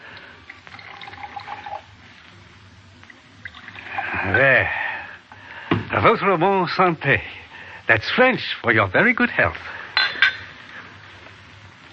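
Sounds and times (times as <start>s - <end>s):
brandy pouring into a brandy snifter glass: 0.0s - 1.9s, 3.4s - 4.6s
speech: 4.2s - 4.8s, 5.9s - 9.8s
soft glass clinks: 10.0s - 10.5s.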